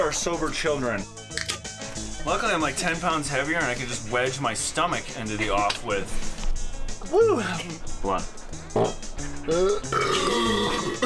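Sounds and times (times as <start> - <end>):
speech: 0.1 - 6.3, 7.0 - 11.0
long loud burp after a carbonated drink: 8.7 - 11.0.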